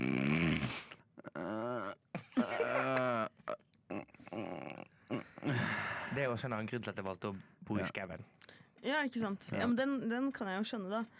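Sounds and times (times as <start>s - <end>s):
person imitating snoring with their voice: 0.0s - 5.6s
speech: 6.3s - 11.1s.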